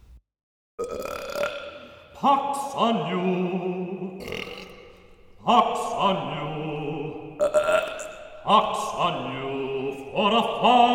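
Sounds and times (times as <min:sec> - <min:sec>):
gravelly rumbling belch: 0:00.8 - 0:02.0, 0:04.2 - 0:05.0, 0:07.4 - 0:08.4
speech: 0:02.2 - 0:04.2, 0:05.5 - 0:06.7, 0:08.5 - 0:09.6, 0:10.2 - 0:10.9.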